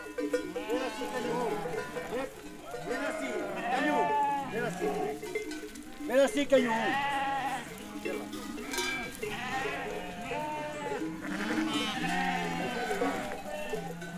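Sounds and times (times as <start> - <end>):
faint bell clinking: 0.0 - 3.1, 4.9 - 6.1, 7.8 - 9.9
flock of ewes bleating: 0.1 - 14.1
speech: 6.4 - 7.2.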